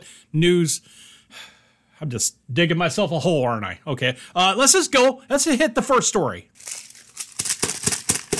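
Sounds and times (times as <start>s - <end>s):
speech: 0.3s - 6.8s
printed newspaper sheet from a pants pocket being unfolded and crinkled: 6.6s - 8.3s.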